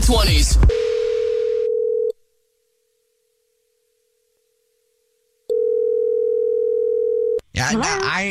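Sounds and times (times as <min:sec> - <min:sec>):
speech: 0:00.1 - 0:00.9, 0:07.6 - 0:08.2
steady single-pitched telephone dial tone: 0:00.7 - 0:02.2, 0:05.5 - 0:07.4.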